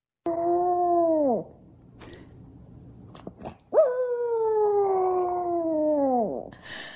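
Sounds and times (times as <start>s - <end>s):
dog howling tunefully as if singing: 0.2s - 1.5s, 3.7s - 6.5s.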